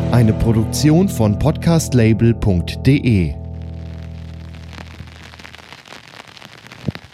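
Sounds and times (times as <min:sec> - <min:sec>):
speech: 0:00.1 - 0:03.4
steady crackling patter of rain: 0:03.7 - 0:07.1.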